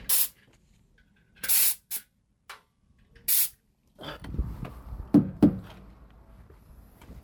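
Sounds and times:
truck air hissing bursts during pre-trip inspection: 0.1 - 0.4, 1.4 - 2.1, 3.3 - 3.6
metallic knocks and thunks on a truck during pre-operation inspection: 5.1 - 5.7.

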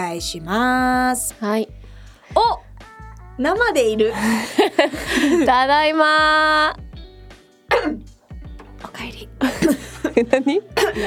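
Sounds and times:
speech: 0.0 - 2.6, 3.4 - 6.8, 9.0 - 11.0
laughter: 4.2 - 5.5, 9.4 - 11.0
person coughing: 7.7 - 8.1.

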